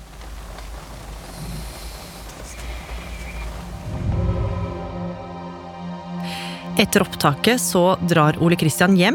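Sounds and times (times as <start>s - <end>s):
rain pattering against a car window heard from inside the car: 0.0s - 3.9s
low droning hum: 0.2s - 8.4s
speech: 6.8s - 9.1s.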